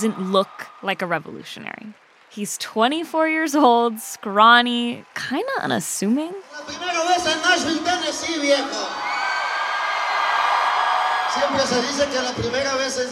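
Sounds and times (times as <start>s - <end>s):
many voices whooping and shouting in unison: 0.0s - 1.1s, 6.7s - 13.0s
speech: 0.0s - 9.0s, 11.4s - 13.1s
huge concert crowd roaring and cheering: 0.0s - 13.1s.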